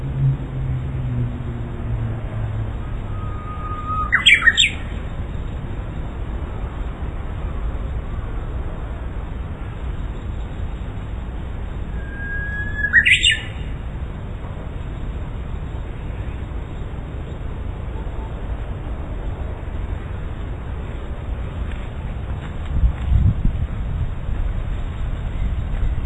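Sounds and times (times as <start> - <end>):
Japanese bush warbler song: 0.0 - 26.0
constant low rumble: 0.0 - 26.0.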